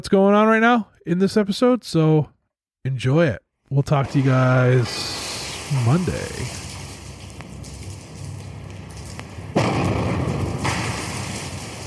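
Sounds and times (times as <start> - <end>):
speech: 0.0 - 6.6
debris crumbling: 3.9 - 11.8
wrecking ball smashing into a brick building: 4.0 - 11.8
low rumble: 6.4 - 11.8.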